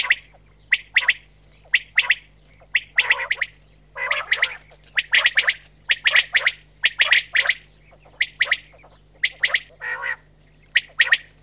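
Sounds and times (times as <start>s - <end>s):
Common Quail giving clicky notes and throaty calls: 0.0s - 11.4s.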